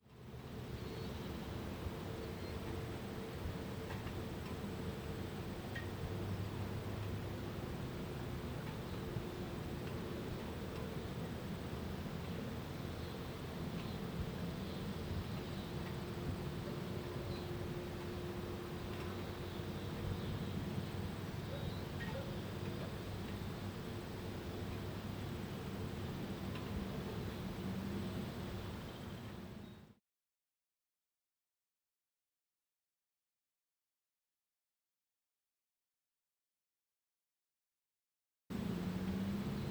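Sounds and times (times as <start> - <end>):
city outskirt outdoor ambience: 0.1 - 29.9, 38.5 - 39.6.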